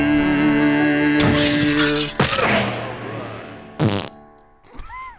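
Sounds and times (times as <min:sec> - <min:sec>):
loud drawn-out fart: 0:00.2 - 0:00.6, 0:01.2 - 0:04.4.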